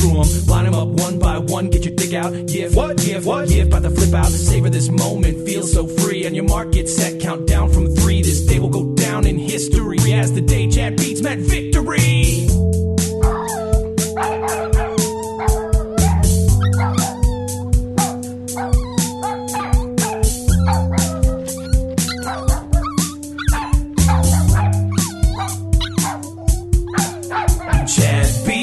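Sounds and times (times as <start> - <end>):
speech: 0.1 - 12.8
dogs barking and yipping: 12.9 - 28.5.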